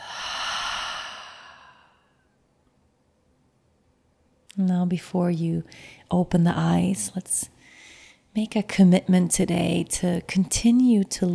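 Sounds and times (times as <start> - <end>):
slow exhale through an open mouth: 0.0 - 2.2
speech: 4.6 - 7.6, 8.4 - 11.3.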